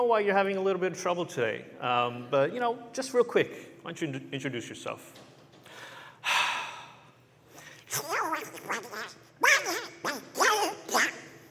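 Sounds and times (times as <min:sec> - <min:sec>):
speech: 0:00.0 - 0:05.2
voice imitating a garbled quacking cartoon duck: 0:07.9 - 0:11.4.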